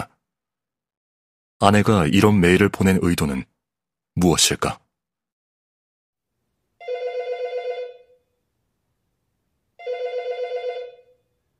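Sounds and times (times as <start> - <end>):
speech: 1.6 - 3.5, 4.2 - 4.8
telephone ringing with electronic bell: 6.8 - 8.2, 9.8 - 11.3.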